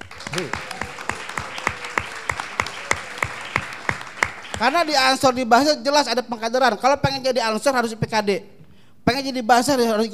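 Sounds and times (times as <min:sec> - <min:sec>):
audience clapping in a steady rhythmic beat: 0:00.0 - 0:05.5
speech: 0:00.4 - 0:00.6, 0:04.6 - 0:10.1.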